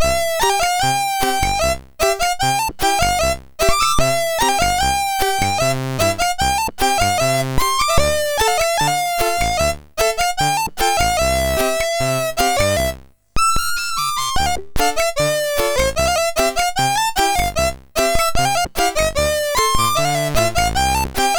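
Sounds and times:
Arabic ringtone melody on a MOS6581R3 SID chip: 0:00.2 - 0:13.0, 0:14.4 - 0:21.3.

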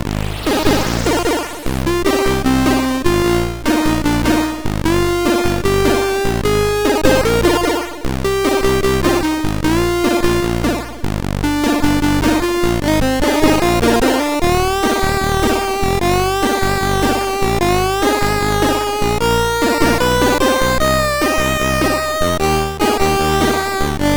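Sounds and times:
jazz chiptune on a MOS6581R4 SID chip: 0:00.1 - 0:24.1.

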